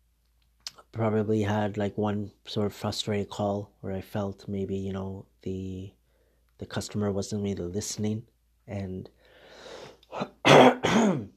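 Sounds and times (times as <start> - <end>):
speech: 0.9 - 6.0, 6.6 - 11.3
person clearing throat: 10.1 - 11.3.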